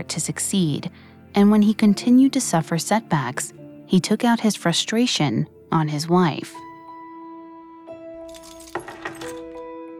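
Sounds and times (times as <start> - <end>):
speech: 0.0 - 6.7
bunch of car keys dropping onto a coffee table: 8.2 - 9.8.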